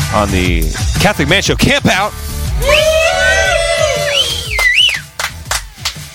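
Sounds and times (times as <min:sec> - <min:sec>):
speech: 0:00.1 - 0:03.6
several people shouting at a campsite during a camp-out: 0:02.5 - 0:04.9.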